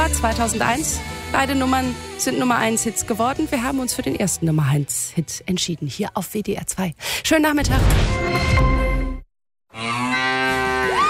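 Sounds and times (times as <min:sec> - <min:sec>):
speech: 0:00.1 - 0:08.8
cow mooing from a milk bottle: 0:09.7 - 0:11.0.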